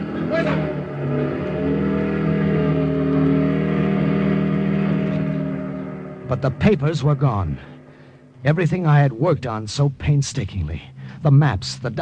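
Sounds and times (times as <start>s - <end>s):
motorcycle engine revving and driving off: 0.0s - 9.0s
speech: 6.3s - 7.7s, 8.4s - 12.0s.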